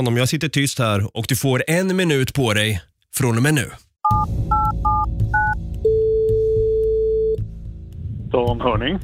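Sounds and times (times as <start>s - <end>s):
speech: 0.0s - 5.3s, 8.3s - 9.0s
two-pitch touch-tone beeps from a phone keypad: 4.0s - 7.4s.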